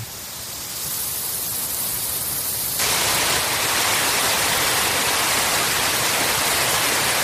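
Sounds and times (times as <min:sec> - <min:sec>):
Tajo river rushing at the Embocador reservoir in Aranjuez: 0:02.8 - 0:07.2.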